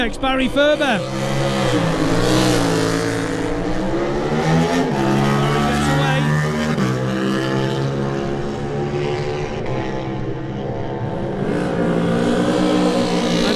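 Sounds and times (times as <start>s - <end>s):
speech: 0.0s - 2.4s
racing motorcycle engine accelerating hard in a Supersport race: 0.5s - 13.5s.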